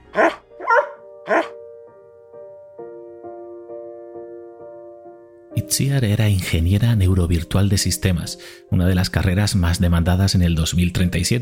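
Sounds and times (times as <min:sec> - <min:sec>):
dog barking: 0:00.1 - 0:01.6
speech: 0:05.7 - 0:11.4.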